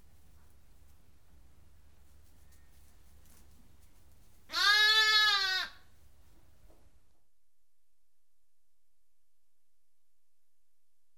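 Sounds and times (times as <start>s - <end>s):
lamb bleating: 4.5s - 5.8s.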